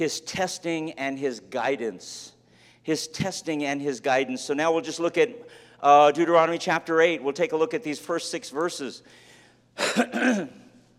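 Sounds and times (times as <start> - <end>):
speech: 0.0 - 9.2, 9.8 - 10.6
person with allergies clearing throat: 9.8 - 10.8.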